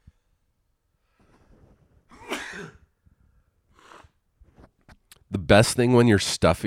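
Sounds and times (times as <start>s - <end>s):
person sneezing: 2.1s - 2.9s
speech: 2.6s - 2.8s, 5.3s - 6.6s.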